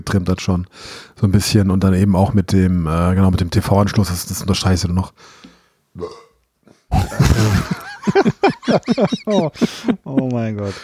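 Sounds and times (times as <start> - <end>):
speech: 0.0 - 6.2, 8.7 - 10.8
loud drawn-out burp: 6.0 - 7.6
laughter: 6.9 - 10.8.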